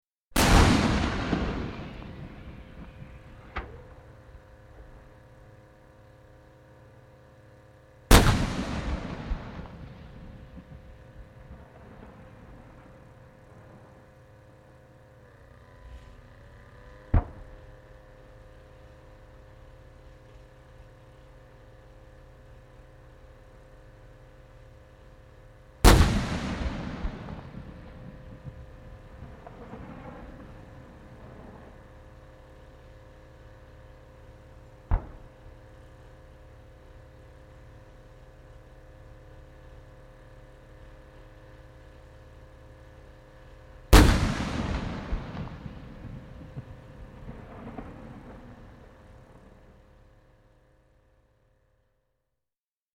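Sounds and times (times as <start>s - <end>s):
Chieftain tank firing High Explosive Squash Head rounds, close perspective: 0.4s - 5.9s, 8.1s - 15.5s, 16.7s - 19.0s, 25.8s - 36.1s, 43.9s - 50.2s.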